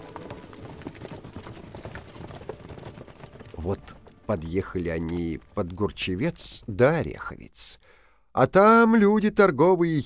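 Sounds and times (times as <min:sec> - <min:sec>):
horses' hooves clip-clopping along a road: 0:00.0 - 0:06.7
speech: 0:03.6 - 0:10.0.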